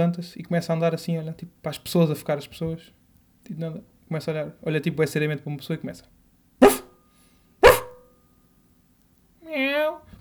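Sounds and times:
speech: 0.0s - 6.2s
older man in the metro imitating a dog barking: 6.6s - 6.8s, 7.6s - 8.0s.

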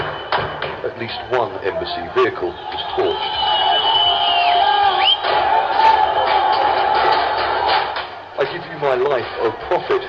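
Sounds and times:
speech: 1.0s - 3.6s, 8.4s - 10.0s
large crowd of protesters roaring and shouting together: 1.0s - 8.4s
rising whistle-like cries: 2.3s - 5.4s.

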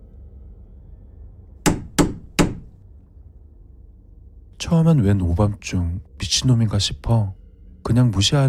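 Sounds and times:
firm knocking on a front door from outside: 1.7s - 2.8s
speech: 4.7s - 8.4s.

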